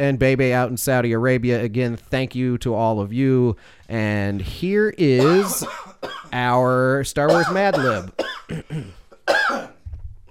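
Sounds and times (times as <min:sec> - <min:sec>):
speech: 0:00.0 - 0:09.4
brief throaty vocal sounds: 0:05.2 - 0:05.8
single harsh cough: 0:05.2 - 0:06.4, 0:07.3 - 0:09.8.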